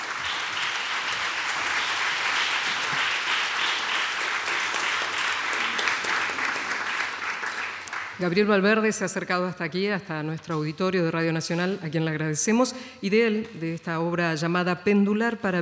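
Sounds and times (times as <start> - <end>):
audience applause in an auditorium: 0.0 - 8.2
speech: 8.2 - 15.5.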